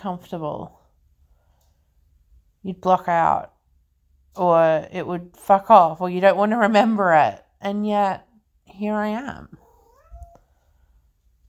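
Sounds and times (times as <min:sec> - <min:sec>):
speech: 0:00.0 - 0:00.8, 0:02.6 - 0:03.5, 0:04.3 - 0:09.6
low noise: 0:00.0 - 0:11.4
female cat in heat yowling: 0:09.6 - 0:10.4.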